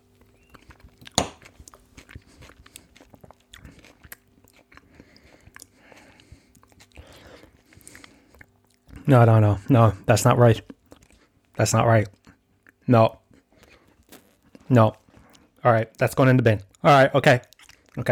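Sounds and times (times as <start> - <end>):
chewing a first bite of food: 0.0 - 18.0
sharp crunch of a first bite of food: 0.6 - 2.8
speech: 9.1 - 10.7, 11.6 - 12.2, 12.9 - 13.2, 14.7 - 15.0, 15.6 - 18.0.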